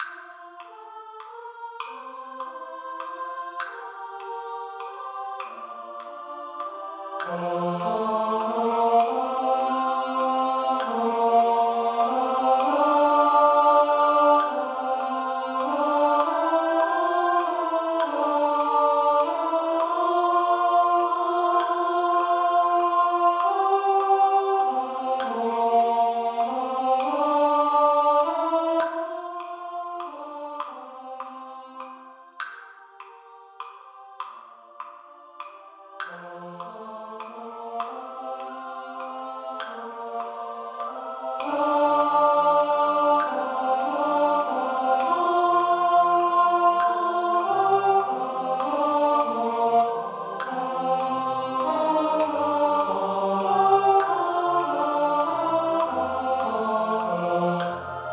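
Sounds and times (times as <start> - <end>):
tenor voice singing: 0.0 - 58.1.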